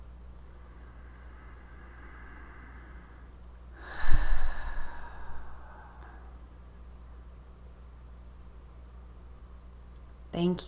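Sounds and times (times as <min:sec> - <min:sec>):
deep audible breath: 0:00.5 - 0:06.4
speech: 0:10.4 - 0:10.6.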